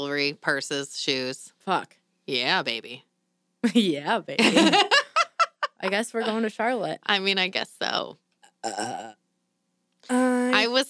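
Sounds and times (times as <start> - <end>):
speech: 0.0 - 5.0, 5.8 - 9.2, 10.0 - 10.8
laughter: 4.4 - 6.4
loud burp with rough voiced rumble: 8.5 - 9.2.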